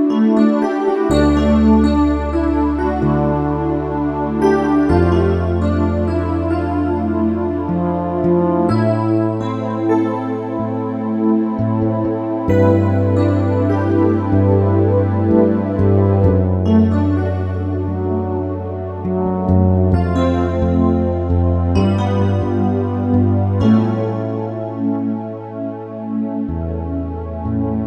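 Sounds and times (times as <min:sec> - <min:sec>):
synthesizer bass-bell pad factory patch: 0:00.1 - 0:27.8.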